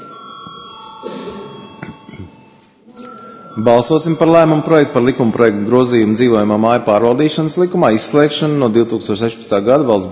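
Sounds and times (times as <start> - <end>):
parliament chamber electric bell ringing for a vote: 0.0 - 5.1
speech: 3.6 - 10.0.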